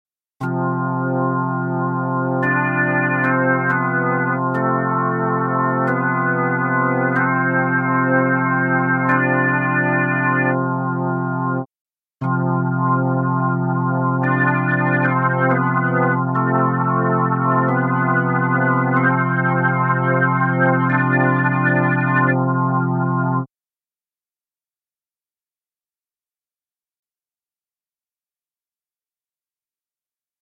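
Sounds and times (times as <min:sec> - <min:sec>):
drawbar organ dry and wet: 0:00.8 - 0:11.6, 0:12.4 - 0:23.5.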